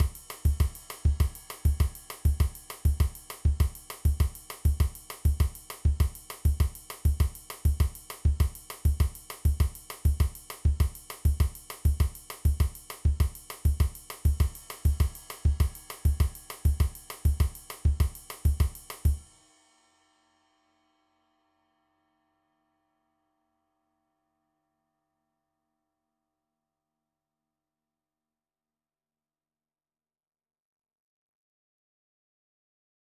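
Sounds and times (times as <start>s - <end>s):
samba beat: 0.0s - 19.2s.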